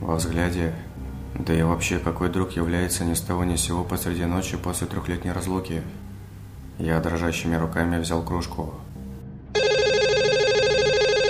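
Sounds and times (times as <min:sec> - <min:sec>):
speech: 0:00.1 - 0:06.1, 0:06.8 - 0:08.9
home telephone ringing with electronic warbling tone: 0:09.6 - 0:11.2.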